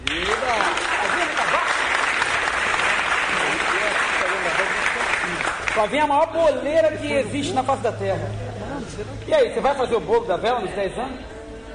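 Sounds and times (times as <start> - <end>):
crowd applauding a musician and composer: 0.0 - 6.5
speech: 5.8 - 11.3.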